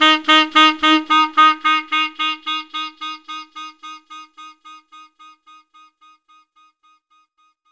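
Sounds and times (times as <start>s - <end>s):
saxophone: 0.0s - 6.0s.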